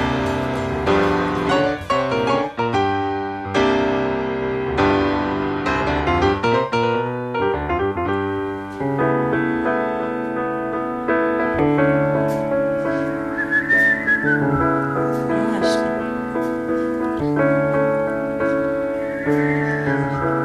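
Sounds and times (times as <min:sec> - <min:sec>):
live jazz band playing sustained chords: 0:00.0 - 0:20.4
singer and audience whistling a melody together: 0:13.0 - 0:15.2, 0:17.6 - 0:20.4.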